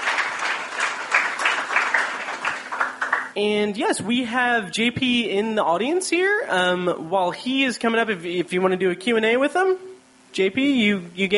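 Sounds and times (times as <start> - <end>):
audience applauding at a short film premiere screening: 0.0 - 3.3
speech: 3.4 - 11.3.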